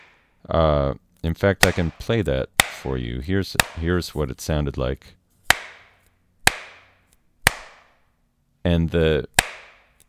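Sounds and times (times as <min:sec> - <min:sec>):
speech: 0:00.5 - 0:05.2, 0:08.6 - 0:09.4
styrofoam pieces whacked together with room reverb: 0:01.6 - 0:03.0, 0:03.6 - 0:04.4, 0:05.4 - 0:08.0, 0:09.3 - 0:10.0.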